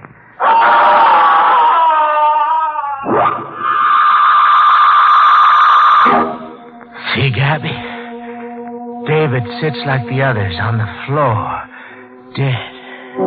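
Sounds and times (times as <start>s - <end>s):
boy screaming: 0.4s - 6.1s
speech: 7.5s - 7.9s, 9.2s - 11.6s, 12.4s - 12.7s.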